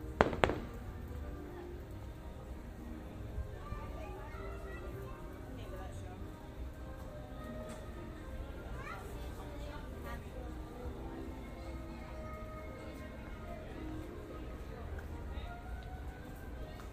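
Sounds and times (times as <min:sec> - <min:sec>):
faint firework pops: 0:00.0 - 0:01.1
outdoor murmur of a crowd: 0:00.0 - 0:16.9
firework bangs: 0:00.2 - 0:01.0.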